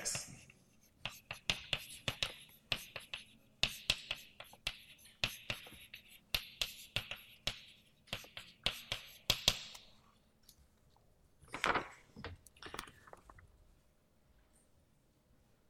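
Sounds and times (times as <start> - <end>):
handwriting of a rate equation during a chemistry lecture: 0.7 - 9.8.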